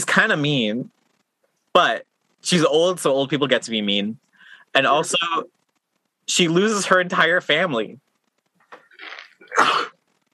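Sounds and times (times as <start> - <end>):
speech: 0.0 - 1.0, 1.8 - 5.6, 6.3 - 8.0, 9.6 - 9.9
person sneezing: 9.0 - 9.9.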